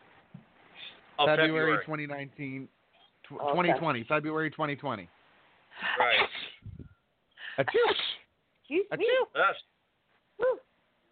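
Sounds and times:
speech: 0:01.2 - 0:05.2, 0:07.6 - 0:09.7
person sneezing: 0:06.0 - 0:06.7, 0:07.7 - 0:08.2.

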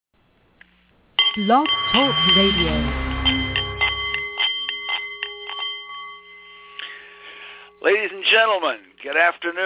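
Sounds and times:
Nepalese meditation bowl ringing: 0:01.2 - 0:08.0
speech: 0:01.4 - 0:03.0, 0:07.9 - 0:09.6.

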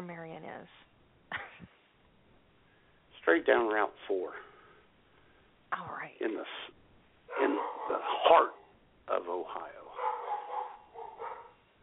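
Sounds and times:
speech: 0:03.3 - 0:04.5, 0:07.4 - 0:09.8
dogs barking: 0:07.3 - 0:08.8, 0:09.7 - 0:11.6.

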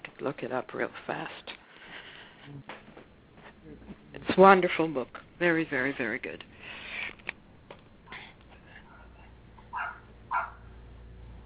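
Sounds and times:
speech: 0:00.2 - 0:01.6, 0:02.5 - 0:02.8, 0:04.4 - 0:06.5
neighbor's dog barking: 0:08.9 - 0:10.8.

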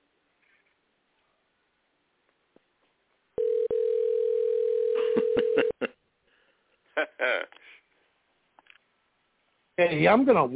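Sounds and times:
telephone dial tone: 0:03.4 - 0:05.6
speech: 0:09.8 - 0:10.5.

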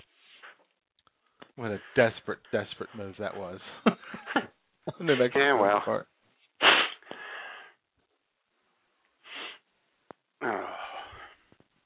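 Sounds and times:
speech: 0:01.6 - 0:06.1
person sniffling from a runny nose: 0:06.6 - 0:07.8, 0:09.2 - 0:09.6.

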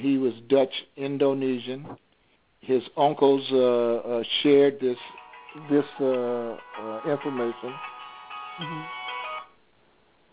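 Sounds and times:
speech: 0:00.0 - 0:07.9, 0:08.6 - 0:09.0
mobile phone ringtone of bright electronic tones: 0:05.0 - 0:09.6.

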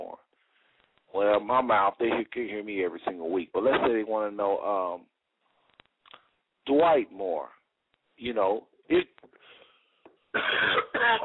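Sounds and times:
faint breathy sounds: 0:00.3 - 0:01.0, 0:09.3 - 0:10.2
speech: 0:01.2 - 0:05.1, 0:06.6 - 0:07.6, 0:08.2 - 0:09.4
person coughing: 0:10.3 - 0:11.2.

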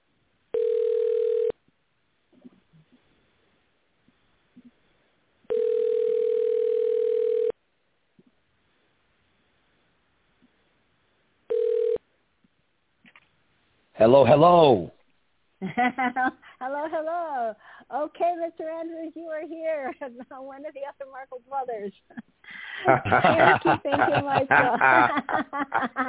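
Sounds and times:
telephone tone while dialing a caller in: 0:00.5 - 0:01.5, 0:05.5 - 0:07.5, 0:11.5 - 0:12.0
speech: 0:14.0 - 0:14.9, 0:15.6 - 0:26.0
laughter: 0:22.8 - 0:26.0.

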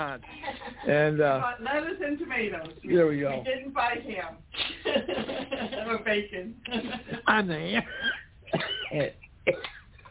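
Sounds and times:
speech: 0:00.0 - 0:09.7
faint hiss: 0:00.0 - 0:10.0
person clearing throat after swallowing an energy drink: 0:07.9 - 0:09.9
person coughing after swallowing an energy drink: 0:07.9 - 0:10.0.

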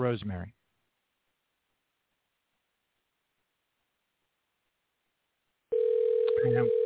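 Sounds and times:
phone line dial tone: 0:05.7 - 0:06.8.

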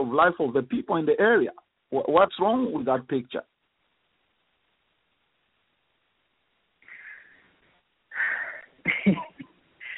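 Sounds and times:
speech: 0:00.0 - 0:03.5
person breathing deeply in and out: 0:06.8 - 0:08.8, 0:09.8 - 0:09.9.

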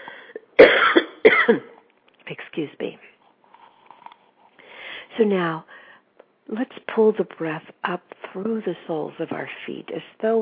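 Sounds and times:
person guiding a breathing exercise coughing: 0:00.6 - 0:01.8
speech: 0:01.2 - 0:01.7, 0:02.3 - 0:03.1, 0:05.2 - 0:05.7, 0:06.5 - 0:10.3.

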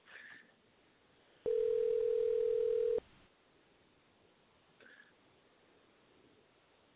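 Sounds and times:
telephone dial tone while placing a call: 0:01.5 - 0:03.0.

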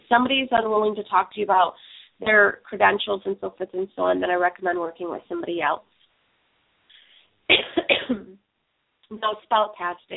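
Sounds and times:
speech: 0:00.1 - 0:05.9, 0:07.5 - 0:08.4, 0:09.1 - 0:10.1
person coughing from a tickle in the throat: 0:07.5 - 0:08.4.

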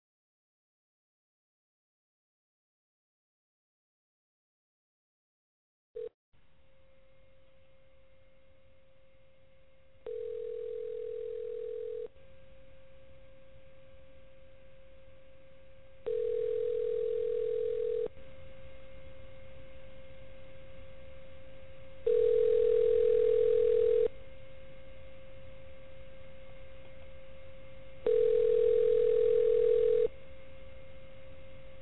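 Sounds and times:
constant low telephone line hum: 0:06.4 - 0:31.8
phone ringback tone on an outgoing call: 0:10.1 - 0:12.1, 0:16.1 - 0:18.1, 0:22.1 - 0:24.1, 0:28.0 - 0:30.1.

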